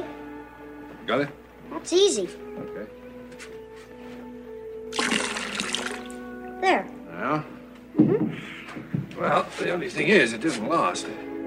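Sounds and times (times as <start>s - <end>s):
speech: 1.1s - 3.5s, 6.6s - 11.3s
water pouring from a container: 4.9s - 6.2s.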